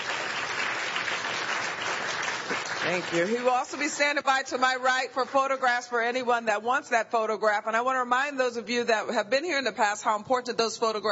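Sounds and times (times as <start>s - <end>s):
audience applause after a book talk: 0.0s - 4.0s
speech: 2.8s - 11.0s.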